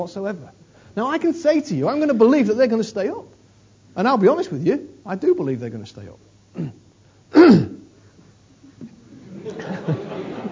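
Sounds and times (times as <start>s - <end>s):
speech: 0.0s - 6.8s
throat clearing during a sermon: 6.5s - 7.9s
laughter: 9.1s - 10.5s.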